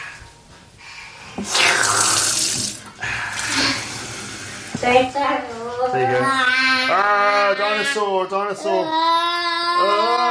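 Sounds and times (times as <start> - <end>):
water gushing from a tap: 1.4 - 3.6
speech: 4.9 - 10.2.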